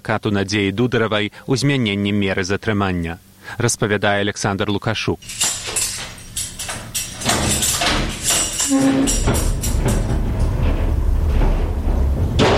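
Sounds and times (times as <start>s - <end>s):
speech: 0.0s - 5.5s, 8.7s - 10.0s
heavy iron door of a pretrial detention center slamming shut: 5.2s - 12.5s.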